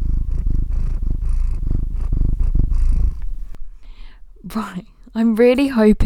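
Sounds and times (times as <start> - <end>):
cat purring: 0.0 - 3.6
speech: 4.5 - 6.0.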